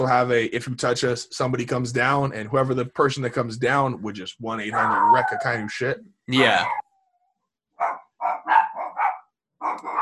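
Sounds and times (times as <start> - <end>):
speech: 0.0 - 6.8
dogs barking: 4.7 - 5.4, 7.8 - 10.0.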